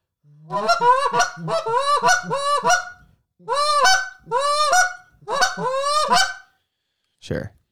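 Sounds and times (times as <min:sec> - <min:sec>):
goose call blown in throaty reedy honks: 0:00.5 - 0:06.4.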